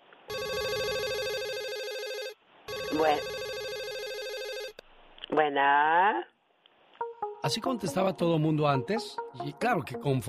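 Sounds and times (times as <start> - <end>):
telephone ringing with a warbling electronic trill: 0.3 - 4.8
speech: 2.9 - 3.4, 5.3 - 6.3, 7.4 - 10.2.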